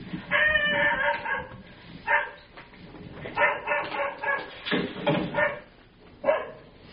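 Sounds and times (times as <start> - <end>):
neighbor's dog barking heard from indoors: 0.3 - 2.5, 3.3 - 4.7, 5.3 - 6.7.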